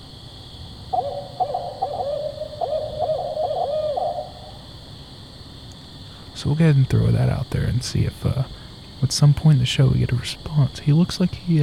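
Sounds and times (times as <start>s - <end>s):
low hiss: 0.0s - 11.6s
recorded barred owl call hooting: 0.9s - 4.8s
speech: 6.4s - 11.6s.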